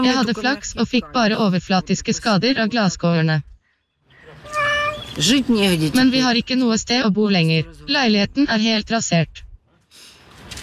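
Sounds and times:
speech: 0:00.0 - 0:03.5, 0:05.2 - 0:09.4
cat meowing in Kyiv Ukraine: 0:04.4 - 0:05.2.

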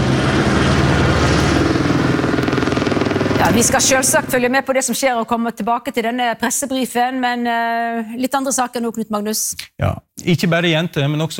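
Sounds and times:
three firefighting helicopters flying overhead in windy conditions: 0:00.0 - 0:04.8
speech: 0:03.5 - 0:11.3.

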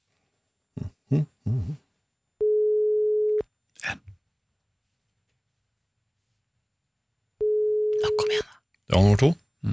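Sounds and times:
speech: 0:01.1 - 0:01.8, 0:09.0 - 0:09.7
unanswered telephone call ringing tone: 0:02.4 - 0:03.4, 0:07.4 - 0:08.3.

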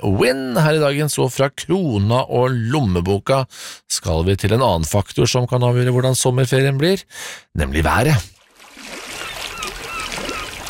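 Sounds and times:
speech: 0:00.0 - 0:08.3
waves lapping at the seaside: 0:08.4 - 0:10.6
gull cries over the water: 0:09.1 - 0:10.6.

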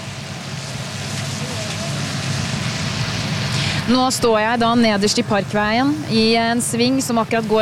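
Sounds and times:
cars of a royal funeral motorcade rolling by with deep engine rumble: 0:00.0 - 0:07.6
speech: 0:03.9 - 0:07.6.

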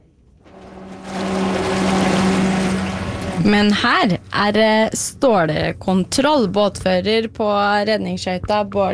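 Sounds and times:
low motor hum: 0:00.4 - 0:05.1
boat bow thruster roaring while docking at a harbour quay: 0:00.5 - 0:04.8
speech: 0:03.5 - 0:08.9.

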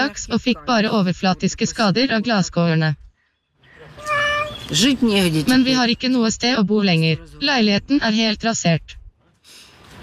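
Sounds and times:
speech: 0:00.0 - 0:03.0, 0:04.7 - 0:09.0
cat meowing in Kyiv, Ukraine: 0:04.0 - 0:04.8.

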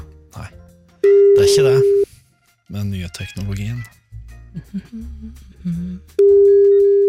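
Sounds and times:
telephone ringing tone of an outgoing phone call: 0:01.0 - 0:02.0, 0:06.2 - 0:07.0
speech: 0:01.5 - 0:01.9, 0:02.8 - 0:06.6.

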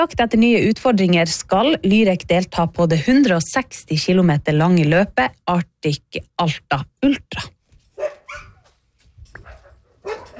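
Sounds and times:
speech: 0:00.0 - 0:08.4
sled dogs expecting to be fed barking and yelping in Norway: 0:08.0 - 0:08.8, 0:09.4 - 0:10.3.

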